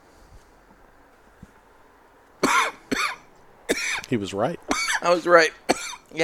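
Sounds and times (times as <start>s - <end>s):
person coughing after a cigar retrohale: 2.4s - 4.1s, 5.7s - 6.0s
speech: 4.1s - 6.2s.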